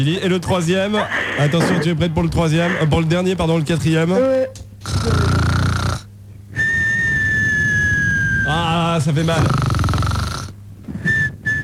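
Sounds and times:
speech: 0.0 - 5.2, 9.0 - 9.6
woman imitating snoring: 4.8 - 8.3, 9.3 - 10.5
thin high steady whistling exhale: 6.6 - 8.5.

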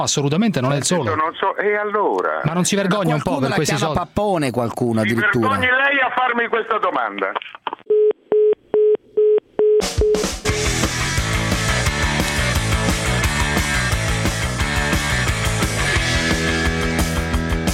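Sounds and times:
speech: 0.0 - 7.7
telephone beeps: 7.9 - 10.2
loud music: 9.9 - 17.7.

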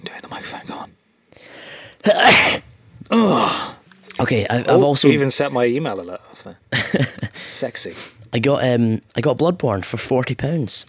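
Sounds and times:
loud sneeze: 2.0 - 3.5
breathy voiced sounds around a sneeze: 3.1 - 4.2
speech: 4.2 - 10.8.

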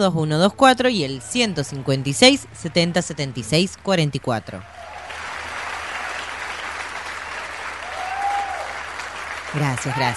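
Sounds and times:
speech: 0.0 - 4.8, 9.5 - 10.1
applause: 4.8 - 10.1.

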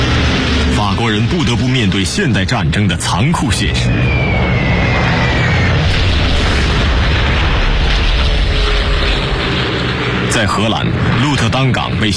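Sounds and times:
explosions of wartime aerial bombing of cities in eastern and northern France: 0.0 - 12.1
speech: 1.0 - 4.4, 10.3 - 12.1.

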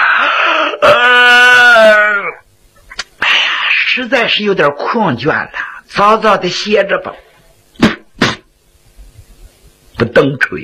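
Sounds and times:
storyteller imitating a yawn with a drawn-out voiced moan: 0.0 - 2.4
speech: 4.1 - 7.9, 10.0 - 10.6.

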